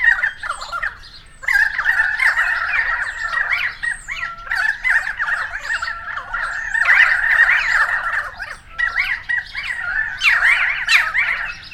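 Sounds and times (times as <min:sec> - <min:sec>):
several currawongs squawking and warbling together: 0:00.0 - 0:11.7.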